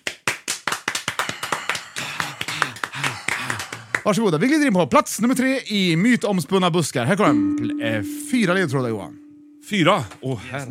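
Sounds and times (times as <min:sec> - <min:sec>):
applause from a small group: 0:00.0 - 0:04.5
speech: 0:04.0 - 0:10.7.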